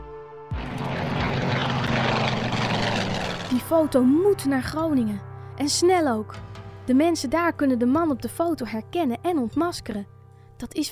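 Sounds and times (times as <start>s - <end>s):
propeller airplane droning overhead: 0.6s - 3.9s
speech: 3.8s - 10.8s.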